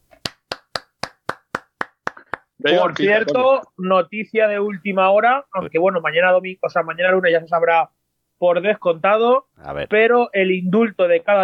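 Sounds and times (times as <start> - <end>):
one person clapping hands: 0.1 - 3.4
speech: 2.6 - 11.4.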